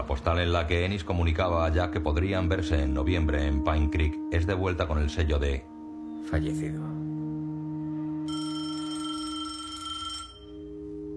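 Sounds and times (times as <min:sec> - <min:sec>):
speech: 0:00.1 - 0:07.0
telephone ringing: 0:08.3 - 0:11.0.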